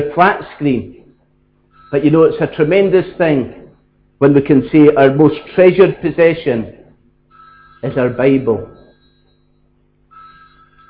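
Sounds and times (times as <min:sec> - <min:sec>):
speech: 0:00.0 - 0:01.0, 0:01.9 - 0:03.6, 0:04.2 - 0:06.8, 0:07.8 - 0:08.8
low hum: 0:00.0 - 0:10.8
telephone ringing with a warbling electronic tone: 0:01.1 - 0:04.0, 0:07.2 - 0:10.8.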